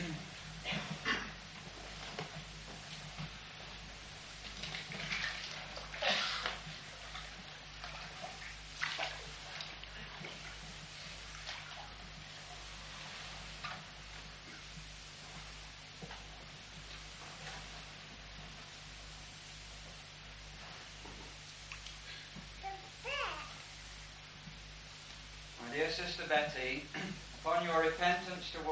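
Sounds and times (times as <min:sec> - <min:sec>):
low hum: 0:00.0 - 0:28.7
water splashing and sloshing in a baptismal pool during a church baptism: 0:00.4 - 0:22.4
speech: 0:25.8 - 0:28.7.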